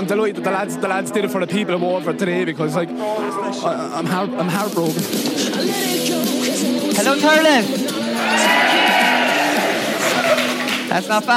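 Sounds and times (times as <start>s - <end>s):
speech: 0.0s - 9.1s, 10.9s - 11.3s
large live audience cheering: 8.1s - 10.9s
whoops and shouts from the audience: 8.2s - 10.6s.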